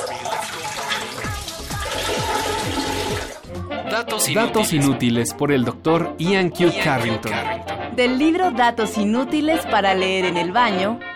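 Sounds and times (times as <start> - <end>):
gurgling swirling water drops: 0.0 - 3.4
pink toy doll toilet flushing water: 0.0 - 3.4
speech: 4.0 - 11.1.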